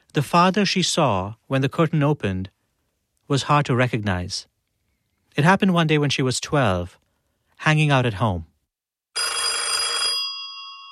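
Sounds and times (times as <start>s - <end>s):
speech: 0.2s - 2.6s, 3.3s - 4.5s, 5.4s - 7.0s, 7.6s - 8.5s
telephone ringing at home with a bright metallic bell trill: 9.2s - 10.9s.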